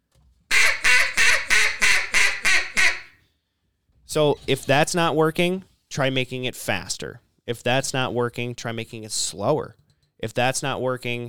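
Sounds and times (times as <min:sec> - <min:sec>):
duck call blown as a greeting call imitating duck quacks: 0:00.5 - 0:03.2
speech: 0:04.1 - 0:11.2.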